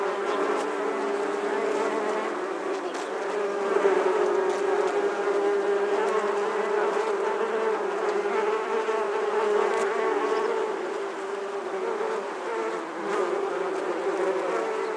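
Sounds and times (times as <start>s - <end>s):
bees buzzing: 0.0s - 14.9s.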